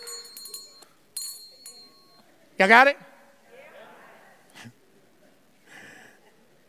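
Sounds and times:
church bell ringing on a Sunday morning: 0.0s - 2.2s
speech: 2.6s - 3.1s.

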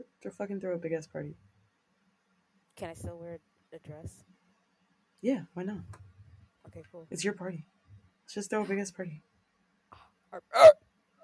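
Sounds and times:
speech: 0.0s - 1.6s, 2.8s - 4.4s, 5.2s - 6.1s, 6.7s - 7.7s, 8.3s - 9.3s, 10.3s - 10.8s
throaty hiccup like an inward burp: 10.3s - 11.2s.

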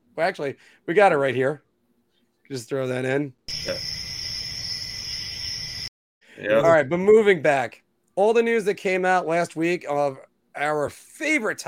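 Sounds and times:
speech: 0.2s - 1.7s, 2.5s - 4.0s, 6.4s - 11.6s
high-pitched cricket chirping: 3.5s - 5.9s.

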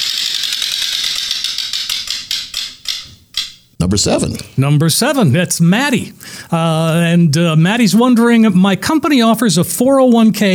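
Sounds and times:
prize wheel spinning and clicking: 0.0s - 3.6s
speech: 3.8s - 10.5s.

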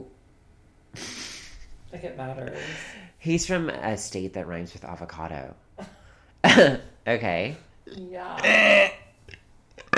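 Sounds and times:
speech: 1.9s - 9.0s
person burping: 7.8s - 9.9s.

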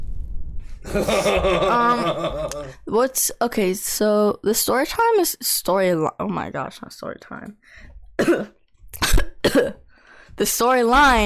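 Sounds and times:
laughter: 0.8s - 2.8s
speech: 0.8s - 9.8s, 10.4s - 11.2s
harsh coughs: 8.2s - 9.9s.

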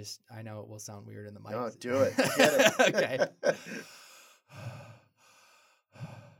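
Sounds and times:
speech: 0.0s - 4.8s
laughter: 2.0s - 3.8s
connected circular breathing with no pause between inhale and exhale: 3.6s - 6.3s.

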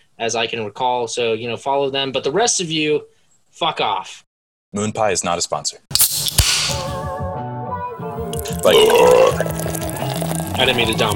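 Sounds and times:
speech: 0.2s - 7.1s, 8.4s - 9.8s, 10.6s - 11.1s
loud drawn-out burp: 8.4s - 9.8s.

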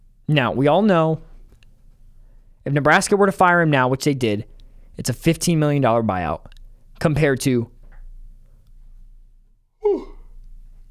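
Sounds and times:
quiet low hum: 0.0s - 10.8s
speech: 0.3s - 1.3s, 2.6s - 7.7s
person yawning: 9.8s - 10.4s.

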